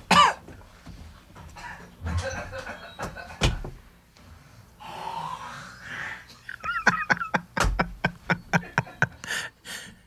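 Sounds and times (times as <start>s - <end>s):
person coughing and hacking after inhaling a mosquito: 0.0s - 0.6s
laughter: 2.0s - 3.5s, 6.4s - 9.4s.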